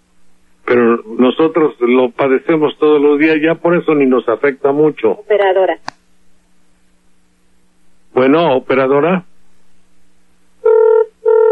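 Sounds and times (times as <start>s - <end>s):
speech: 0.7s - 6.0s, 8.2s - 9.3s
telephone line ringing after a number is dialed: 10.6s - 11.4s.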